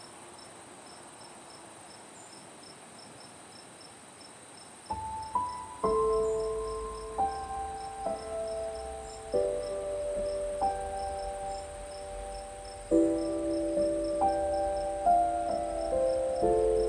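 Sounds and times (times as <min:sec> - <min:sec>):
crickets chirping: 0:00.0 - 0:16.8
soft piano playing slow sustained notes: 0:04.9 - 0:16.8.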